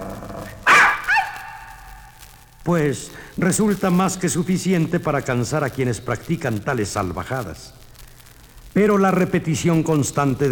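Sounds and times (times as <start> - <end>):
child barking like a dog: 0.0 - 2.2
speech: 2.6 - 7.8, 8.7 - 10.5.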